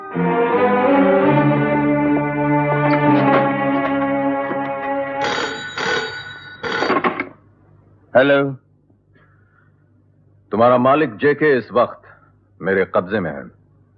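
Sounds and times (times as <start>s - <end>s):
sustained droning tonal music: 0.0s - 6.4s
telephone ringing as an outgoing call is placed: 3.1s - 7.3s
speech: 8.2s - 8.6s, 10.5s - 12.0s, 12.6s - 13.6s.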